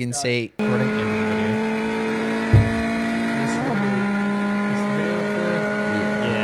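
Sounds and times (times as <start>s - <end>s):
speech: 0.0s - 0.9s
small turbocharged Fiat car engine humming: 0.6s - 6.4s
low thump: 2.5s - 3.2s.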